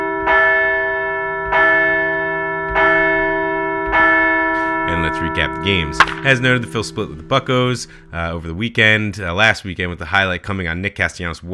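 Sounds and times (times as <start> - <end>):
bell struck with a long shimmering tone: 0.1 - 9.3
speech: 5.6 - 11.5.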